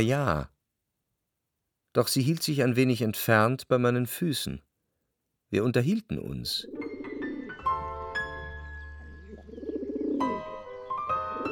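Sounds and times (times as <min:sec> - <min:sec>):
speech: 0:00.0 - 0:00.6, 0:02.0 - 0:04.7, 0:05.5 - 0:06.8
doves cooing at daybreak in early spring: 0:06.6 - 0:07.6, 0:09.0 - 0:11.5.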